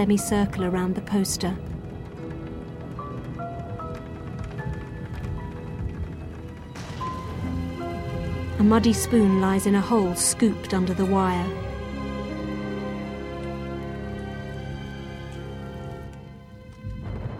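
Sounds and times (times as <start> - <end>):
speech: 0.0 - 1.7, 8.6 - 11.7
music: 0.0 - 17.3
steady rain in heavy drops: 0.0 - 17.3
person narrating: 8.6 - 11.6.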